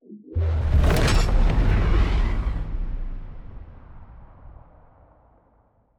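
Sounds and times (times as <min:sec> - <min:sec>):
destroyer ship moving: 0:00.4 - 0:05.0.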